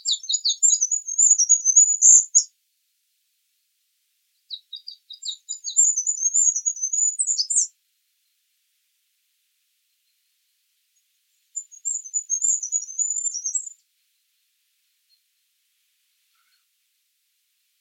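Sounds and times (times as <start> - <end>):
bird singing very high rapid chirps and dense twittering: 0.0 - 2.5, 4.4 - 7.7, 11.4 - 13.8.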